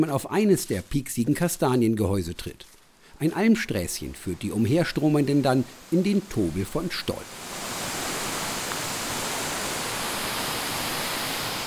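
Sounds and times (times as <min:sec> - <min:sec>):
speech: 0:00.0 - 0:07.7
waterfall thundering over a high rock face in the Stoll gorge: 0:04.3 - 0:11.6.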